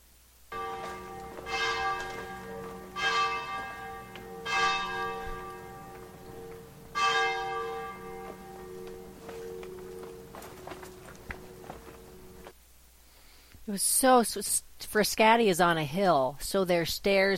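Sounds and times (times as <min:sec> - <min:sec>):
outdoor ambience: 0:00.0 - 0:17.3
church bells ringing in Frascati: 0:00.5 - 0:12.5
faint footsteps of two people walking through cobblestone alleyways: 0:00.5 - 0:12.6
speech: 0:13.7 - 0:17.3.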